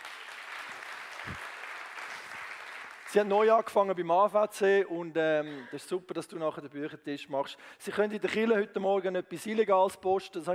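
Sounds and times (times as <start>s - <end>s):
audience applause at a church gathering: 0.0s - 3.5s
speech: 3.1s - 10.5s.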